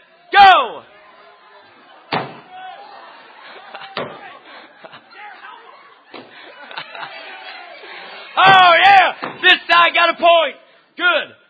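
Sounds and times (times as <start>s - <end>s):
crowd cheering and shouting in a room: 0.0s - 10.6s
laughter: 0.9s - 9.4s
sharp loud pops: 2.1s - 2.5s
speech: 10.0s - 11.4s.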